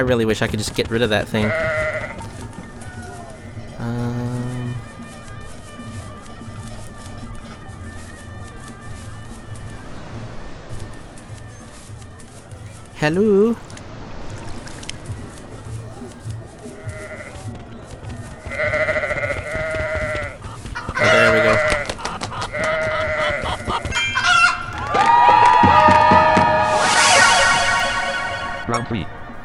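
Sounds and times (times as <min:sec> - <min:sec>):
speech: 0:00.0 - 0:01.9, 0:13.0 - 0:13.7
goats bleating: 0:01.3 - 0:02.5, 0:16.7 - 0:17.5, 0:18.4 - 0:25.2
laughter: 0:02.3 - 0:04.9, 0:20.1 - 0:27.1
rooster crowing: 0:20.8 - 0:29.4.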